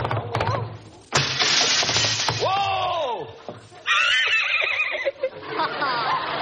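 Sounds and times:
thud: 0.0 - 2.7
crashing noise as a rider gallops in through a window: 1.0 - 2.7
laughter: 3.8 - 6.4
horse neighing: 3.9 - 5.2.

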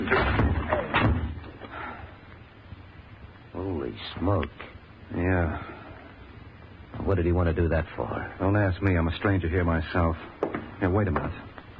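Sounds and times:
door shoved hard with a shoulder: 0.0 - 1.4
speech: 4.2 - 5.7, 7.1 - 11.5.

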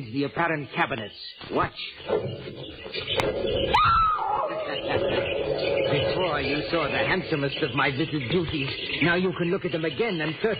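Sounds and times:
speech: 0.0 - 4.1, 6.2 - 10.5
low murmuring: 1.4 - 10.5
caged animal squealing from an insulated cage: 2.0 - 8.4.

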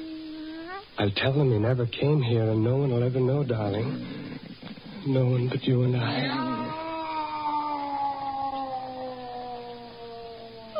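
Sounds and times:
cat meowing with long downward-sliding meow: 0.1 - 0.9, 6.1 - 10.7
speech: 1.0 - 4.2, 5.0 - 6.6.

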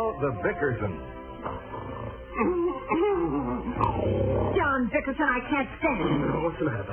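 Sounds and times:
speech: 0.2 - 1.6, 2.4 - 6.9
loud exaggerated comic snoring with a wheezy whistling quality: 1.5 - 2.9, 3.7 - 4.6.

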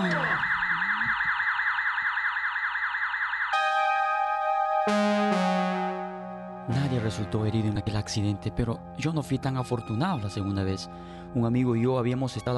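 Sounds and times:
burglar alarm with warbling tone and electronic beeps: 0.0 - 6.6
speech: 7.0 - 12.5.

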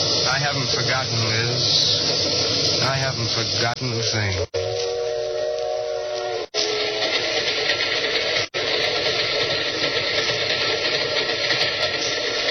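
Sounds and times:
steam train hissing steam: 0.0 - 12.4
speech: 0.4 - 4.5
steam train whistle: 4.3 - 8.6.

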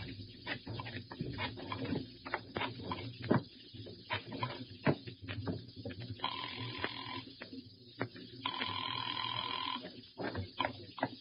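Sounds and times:
faint sounds: 0.0 - 11.1
telephone ringing in electronic bursts: 6.2 - 7.3, 8.4 - 9.8.

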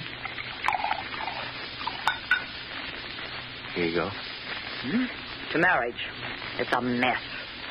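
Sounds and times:
bourbon being poured into a glass: 0.2 - 2.5
glass clinking against glass: 0.6 - 2.5
speech: 3.8 - 7.3.

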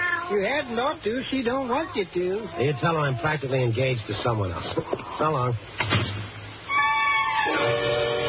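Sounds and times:
cat meowing: 0.0 - 0.8
speech: 0.3 - 6.2, 7.4 - 8.2.

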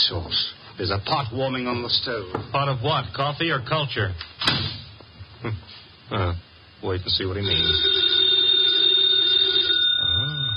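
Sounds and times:
speech: 0.1 - 4.3, 5.4 - 8.0
telephone ringing with continuous electronic tone: 7.4 - 10.5.

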